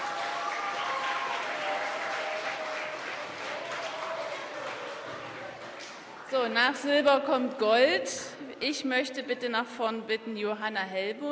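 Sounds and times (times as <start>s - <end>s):
audience applause: 0.0s - 6.3s
speech: 6.3s - 11.3s.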